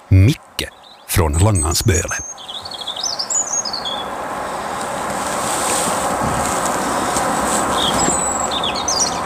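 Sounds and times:
European robin singing outdoors in spring: 0:00.0 - 0:04.1, 0:07.8 - 0:09.2
wind: 0:00.0 - 0:09.2
speech: 0:00.2 - 0:02.6.

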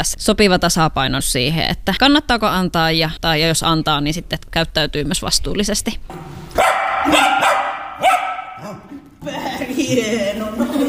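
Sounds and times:
speech: 0:00.0 - 0:10.8
dog barking: 0:06.5 - 0:08.9
laughter: 0:08.6 - 0:10.8.

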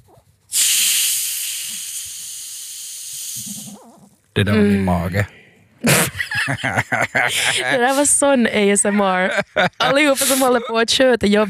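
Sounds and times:
carbonated drink bottle opened with hiss of escaping gas: 0:00.5 - 0:04.2, 0:10.1 - 0:10.5
carbonated drink bubbles fizzing: 0:00.5 - 0:04.4
speech: 0:03.4 - 0:11.4
laughter: 0:05.8 - 0:10.9.

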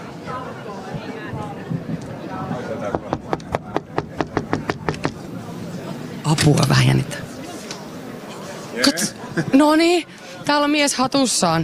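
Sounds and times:
murmuring chatter: 0:00.0 - 0:11.6
knocking on a heavy red wooden door: 0:02.9 - 0:05.2
speech: 0:06.3 - 0:07.3, 0:08.9 - 0:11.6.

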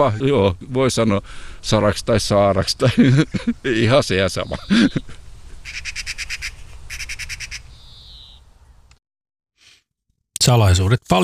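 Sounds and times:
speech: 0:00.0 - 0:06.0, 0:10.4 - 0:11.2
laughter: 0:02.7 - 0:05.6
lanceolated warbler singing reeling trills: 0:04.3 - 0:08.9.

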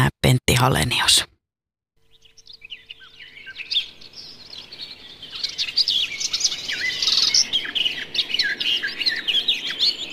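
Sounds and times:
speech: 0:00.3 - 0:01.3
garden warbler singing: 0:02.0 - 0:10.1.

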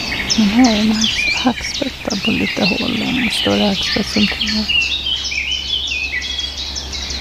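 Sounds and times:
steady low rumble: 0:00.0 - 0:05.1
Eurasian blackcap singing in a forest: 0:00.0 - 0:07.1
speech: 0:00.4 - 0:05.0.

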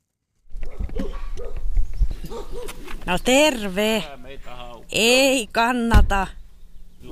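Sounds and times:
Karelian bear dogs barking at arriving visitors at a boatbuilder's workshop in Finland: 0:00.6 - 0:02.9
speech: 0:02.2 - 0:04.2, 0:04.9 - 0:06.4.

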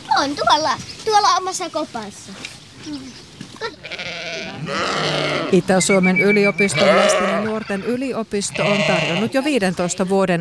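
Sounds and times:
speech: 0:00.2 - 0:10.4
sheep bleating at an animal park: 0:03.6 - 0:05.6, 0:06.5 - 0:10.1.

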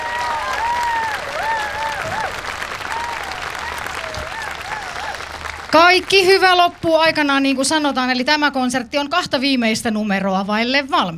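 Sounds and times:
wavering whistles from the audience: 0:00.0 - 0:05.4
large concert audience applauding: 0:00.0 - 0:08.0
speech: 0:05.7 - 0:11.1.

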